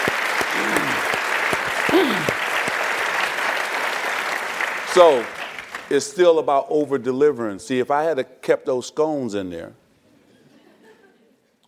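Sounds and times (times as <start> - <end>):
people cheering: 0.0 - 5.4
audience applause: 0.0 - 6.0
speech: 5.0 - 9.8.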